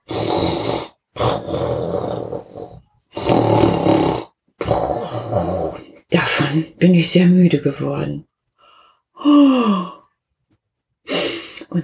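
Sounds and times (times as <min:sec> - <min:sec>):
dog lying on a bed snoring loudly: 0:00.0 - 0:05.9
speech: 0:06.6 - 0:08.3, 0:09.2 - 0:10.0, 0:11.1 - 0:11.8.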